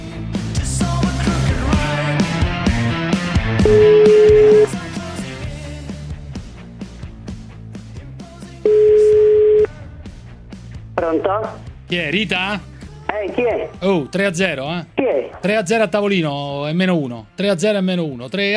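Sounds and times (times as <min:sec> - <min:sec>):
busy music: 0:00.0 - 0:18.5
telephone tones as a call is placed: 0:03.7 - 0:04.7, 0:08.7 - 0:09.7
speech: 0:11.1 - 0:18.5.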